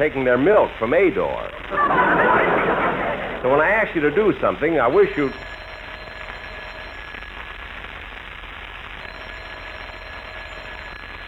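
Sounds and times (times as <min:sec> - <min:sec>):
speech: 0:00.0 - 0:02.5, 0:03.4 - 0:05.5
laughter: 0:01.7 - 0:04.1
telephone bell ringing: 0:04.8 - 0:07.4, 0:09.0 - 0:11.2.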